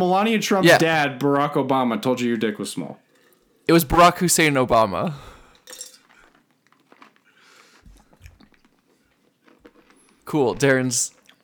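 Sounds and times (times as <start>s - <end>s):
speech: 0.0s - 3.0s, 3.7s - 5.8s, 10.3s - 11.2s
ice cubes being chewed: 5.6s - 11.4s.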